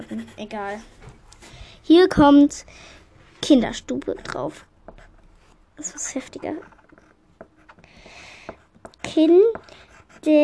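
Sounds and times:
speech: 0:00.0 - 0:01.0, 0:01.9 - 0:04.7, 0:05.8 - 0:06.8, 0:09.1 - 0:10.4
coloured pen scratching on paper while writing a word: 0:03.6 - 0:07.8, 0:08.5 - 0:10.4.

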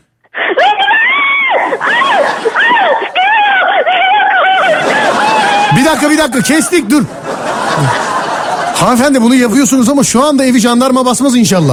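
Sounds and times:
woman screaming in strained wavering cries: 0:00.4 - 0:05.8
laughter: 0:00.4 - 0:09.8
speech: 0:05.9 - 0:07.2, 0:07.8 - 0:08.0, 0:08.8 - 0:11.7.

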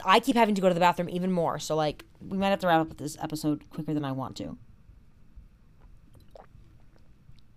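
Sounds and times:
speech: 0:00.0 - 0:04.7
low hum: 0:00.0 - 0:07.5
person sipping water: 0:05.8 - 0:07.5.

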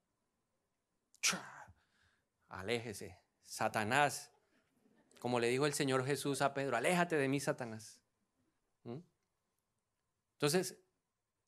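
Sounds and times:
sneeze: 0:01.2 - 0:01.6
speech: 0:01.3 - 0:01.5, 0:02.5 - 0:04.3, 0:05.2 - 0:08.0, 0:08.8 - 0:09.1, 0:10.4 - 0:10.8.

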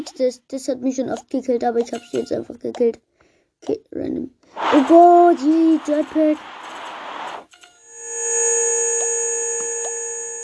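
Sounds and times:
speech: 0:00.0 - 0:06.6
noisy whoosh: 0:04.6 - 0:07.5.

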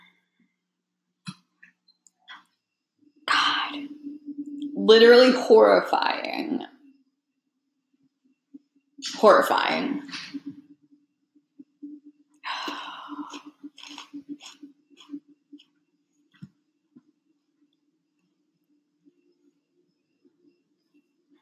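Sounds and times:
steady low hum: 0:02.9 - 0:07.3, 0:07.9 - 0:21.4
speech: 0:04.9 - 0:06.6, 0:09.2 - 0:10.3
crunching a Cheeto snack: 0:13.3 - 0:15.1.

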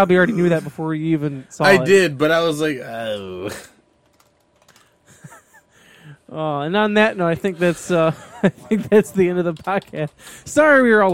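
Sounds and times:
speech: 0:00.0 - 0:03.7, 0:06.3 - 0:11.1
typing on a computer keyboard: 0:04.0 - 0:05.0, 0:09.1 - 0:11.1
laughter: 0:05.1 - 0:05.7, 0:07.4 - 0:09.3.

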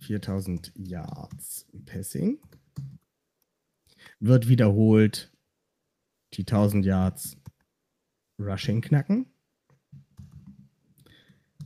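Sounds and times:
speech: 0:00.1 - 0:02.9, 0:04.2 - 0:05.3, 0:06.3 - 0:07.4, 0:08.4 - 0:09.3
typing on a computer keyboard: 0:00.4 - 0:01.5, 0:02.4 - 0:03.1.

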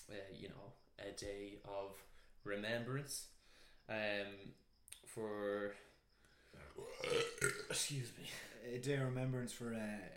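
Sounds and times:
speech: 0:00.1 - 0:05.9, 0:06.5 - 0:10.1
loud deep burps: 0:06.7 - 0:07.9.

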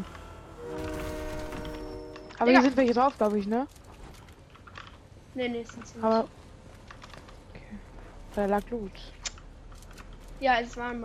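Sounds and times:
sustained horn-like tones of video game train: 0:00.0 - 0:03.0
video game train rumbling: 0:00.0 - 0:11.0
speech: 0:02.4 - 0:03.8, 0:05.4 - 0:06.4, 0:08.4 - 0:09.2, 0:10.4 - 0:11.0.

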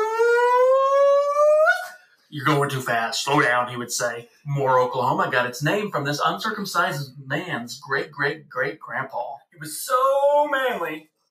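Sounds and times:
man howling with his mouth in imitation of a police siren: 0:00.0 - 0:02.0
speech: 0:02.3 - 0:11.1.

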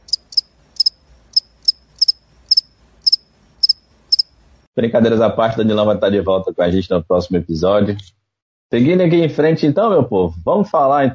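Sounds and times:
crickets chirping in doubled chirps: 0:00.0 - 0:04.6
speech: 0:04.8 - 0:11.1.

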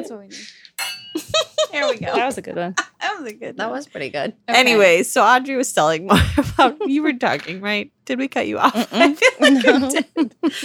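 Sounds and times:
speech: 0:00.0 - 0:10.6
glasses clinking in a toast: 0:00.8 - 0:01.4
laughter: 0:01.2 - 0:03.0, 0:08.8 - 0:10.6.

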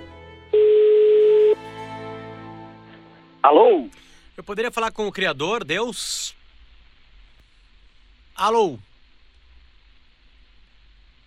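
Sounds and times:
steady telephone tone while a call is being placed: 0:00.6 - 0:01.6
quiet ongoing background: 0:03.0 - 0:11.2
speech: 0:03.4 - 0:06.4, 0:08.4 - 0:08.9.

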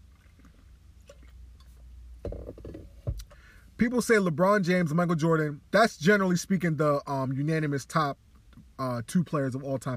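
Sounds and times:
person gulping water: 0:00.0 - 0:01.7
knock: 0:02.2 - 0:02.8
glass bumping as it is lifted: 0:02.2 - 0:02.9
speech: 0:03.8 - 0:08.2, 0:08.8 - 0:09.9.

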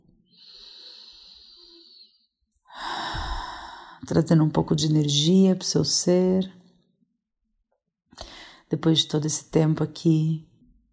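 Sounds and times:
person drawing a long slow breath in: 0:00.3 - 0:04.0, 0:08.2 - 0:08.6
person pushing a strong breath out: 0:00.4 - 0:04.0
speech: 0:04.0 - 0:06.6, 0:08.7 - 0:10.5.

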